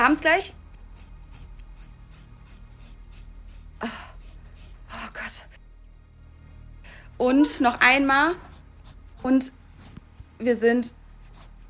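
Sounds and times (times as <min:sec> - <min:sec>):
speech: 0:00.0 - 0:00.6, 0:07.2 - 0:08.5, 0:09.2 - 0:09.6, 0:10.4 - 0:11.0
scissors cutting through a person's very thick long hair: 0:00.0 - 0:05.3, 0:08.2 - 0:11.6.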